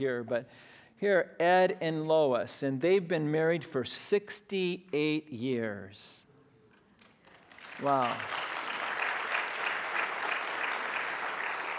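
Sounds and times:
speech: 0.0 - 6.2, 7.8 - 8.5
audience applause: 7.5 - 11.7.

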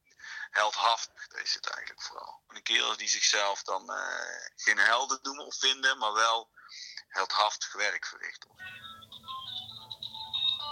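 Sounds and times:
speech: 0.6 - 9.3
prepaid disposable mobile phone ringing with electronic melody: 8.6 - 10.6.

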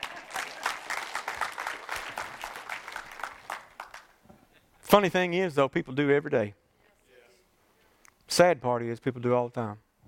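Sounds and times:
crowd applauding: 0.0 - 4.2
speech: 4.9 - 6.6, 8.4 - 9.8.

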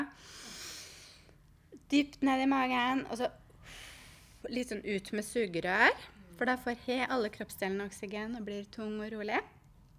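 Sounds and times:
deep inhale through the nose: 0.1 - 1.3, 3.6 - 4.5
speech: 1.9 - 3.8, 4.4 - 9.6.

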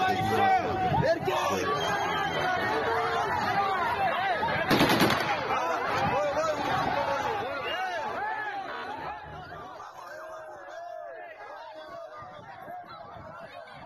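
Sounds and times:
crowd shouting at a street protest against mobilization in Dagestan: 0.0 - 13.8
burst of gunfire from an AK-variant rifle: 4.7 - 5.8.

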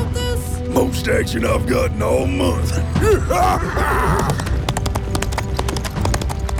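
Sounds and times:
speech: 0.9 - 4.5
horse hooves clip-clopping: 4.1 - 6.5.

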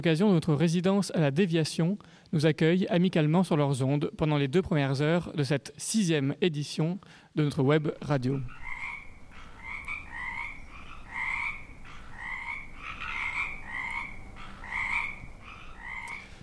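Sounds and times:
speech: 0.0 - 8.6
chorus of frogs croaking: 7.7 - 16.4.

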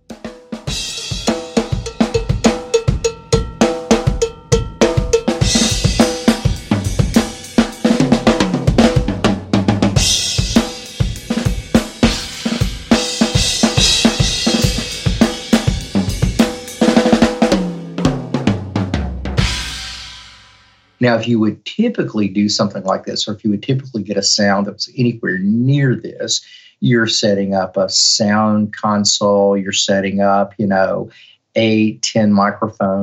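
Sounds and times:
acoustic drum kit played loudly in a room: 0.0 - 21.3
washing cymbals: 0.1 - 9.1, 10.0 - 17.6
speech: 21.0 - 33.0.

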